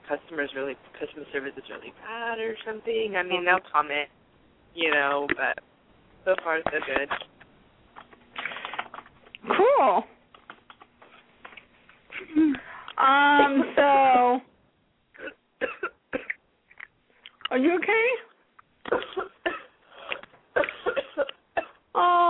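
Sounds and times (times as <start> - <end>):
speech: 0.1 - 7.3, 9.4 - 10.1, 12.2 - 14.5, 17.5 - 18.3, 18.9 - 19.3
person coughing raspily and clearing throat: 15.2 - 16.4, 18.9 - 21.8.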